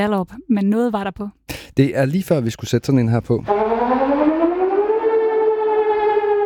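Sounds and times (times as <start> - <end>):
speech: 0.0 - 4.3
civil defense siren wailing: 3.5 - 6.4.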